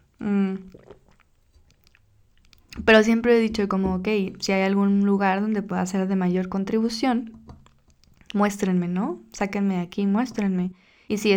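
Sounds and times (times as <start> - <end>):
person sipping coffee from a cup: 0.1 - 2.8
speech: 2.9 - 7.4, 8.3 - 11.3.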